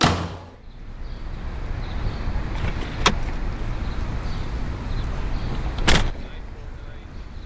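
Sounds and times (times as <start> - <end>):
car door thumping shut: 0.0 - 0.6
car engine rumbling as the vehicle gets underway: 0.0 - 7.4.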